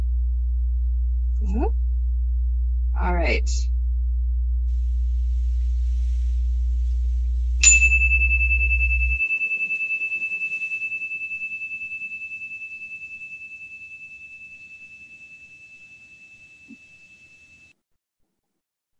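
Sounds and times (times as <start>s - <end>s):
low hum: 0.0s - 17.6s
speech: 1.5s - 1.8s, 3.0s - 3.7s
single bright chime ringing: 7.6s - 17.7s.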